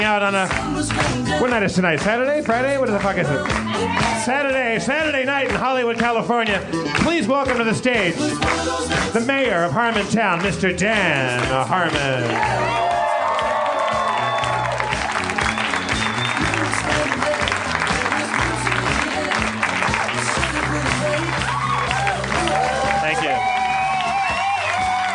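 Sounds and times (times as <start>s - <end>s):
large crowd applauding: 0.0s - 6.1s, 10.0s - 25.1s
speech: 0.1s - 12.9s
cheers and whoops: 12.3s - 16.7s, 21.2s - 25.1s.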